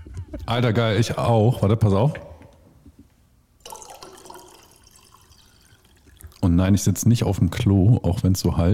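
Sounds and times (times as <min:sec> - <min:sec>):
speech: 0:00.5 - 0:02.3, 0:06.6 - 0:08.7
sparkling tap water pouring into a glass: 0:03.6 - 0:06.5.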